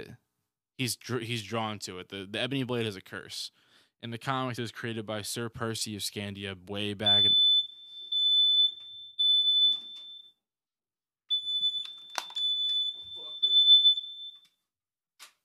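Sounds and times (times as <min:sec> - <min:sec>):
speech: 0:00.8 - 0:07.4
fire alarm beeping high-pitched: 0:07.0 - 0:10.4, 0:11.3 - 0:14.6.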